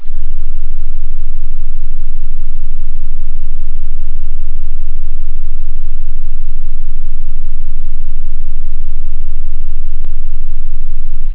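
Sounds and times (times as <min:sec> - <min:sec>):
modulated synth bass: 0:00.0 - 0:11.3.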